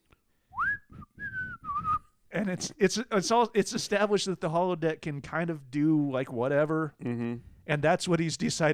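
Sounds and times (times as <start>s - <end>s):
person whistling a tune: 0.6s - 2.1s
speech: 2.3s - 8.7s.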